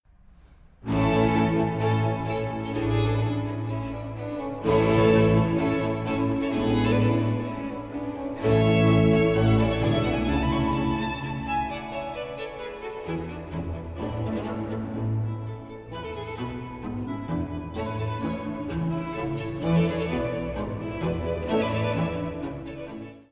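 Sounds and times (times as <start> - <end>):
two violins and basso continuo playing an allegro in B minor: 0.8 - 23.3.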